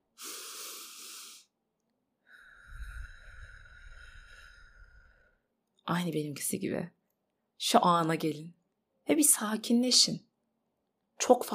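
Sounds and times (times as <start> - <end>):
deep breath in and out: 0.1 - 1.5, 2.2 - 5.5
speech: 5.9 - 7.0, 7.6 - 10.3, 11.2 - 11.5.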